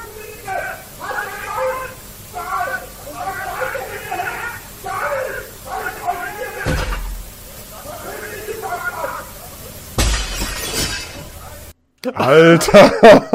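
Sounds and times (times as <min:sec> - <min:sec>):
window glass pane shattering: 0:05.7 - 0:07.4, 0:10.0 - 0:11.7
laughter: 0:12.0 - 0:13.3
speech: 0:12.0 - 0:13.3.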